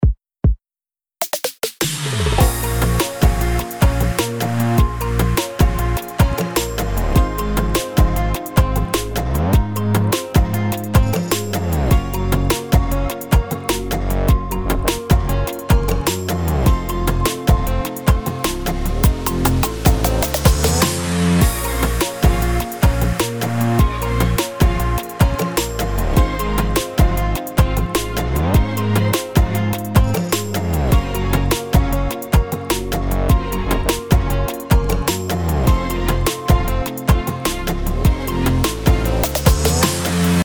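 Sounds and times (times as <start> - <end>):
modern bastaki music: 1.2 - 40.4.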